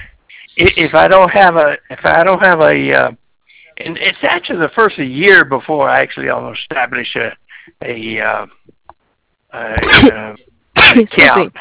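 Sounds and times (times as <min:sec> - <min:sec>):
speech: 0:00.6 - 0:03.2, 0:03.8 - 0:08.6, 0:09.5 - 0:11.5
person sneezing: 0:09.7 - 0:11.5.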